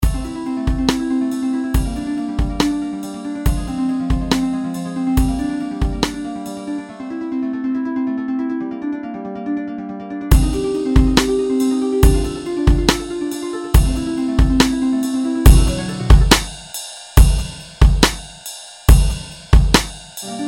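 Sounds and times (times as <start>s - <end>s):
harp over hip hop beat: 0.0s - 8.6s, 10.2s - 18.3s, 19.0s - 20.4s.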